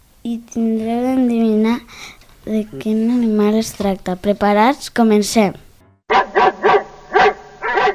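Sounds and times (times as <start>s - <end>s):
speech: 0.2s - 1.8s, 2.5s - 6.2s
dog barking: 6.1s - 7.9s.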